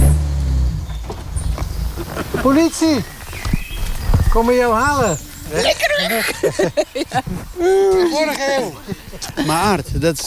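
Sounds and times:
car engine drone arriving at a house on the Utrechtse Heuvelrug: 0.0s - 5.7s
laughter: 2.1s - 2.8s, 5.4s - 10.2s
speech: 2.4s - 3.2s, 4.4s - 10.2s.

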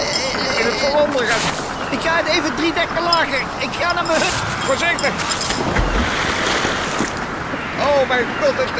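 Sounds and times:
gusting wind buffeting the microphone: 0.0s - 8.7s
speech: 0.8s - 6.0s, 7.8s - 8.7s
heavy storm waves crashing against a large ship: 4.3s - 7.6s.

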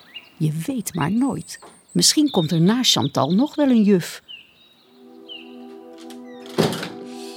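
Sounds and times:
birds chirping faintly: 0.0s - 7.3s
speech: 0.4s - 4.3s
front door opening with a dull thunk: 6.4s - 7.0s.

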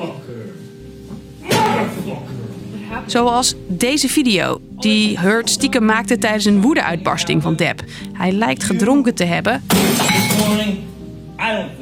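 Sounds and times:
speech: 2.1s - 10.5s
glass smashing: 9.7s - 10.7s.

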